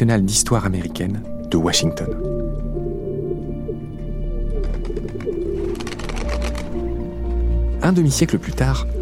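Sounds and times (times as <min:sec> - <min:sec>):
speech: 0:00.0 - 0:02.3, 0:07.8 - 0:08.9
pigeons cooing: 0:02.0 - 0:06.8
fluttery rustling: 0:05.6 - 0:06.8.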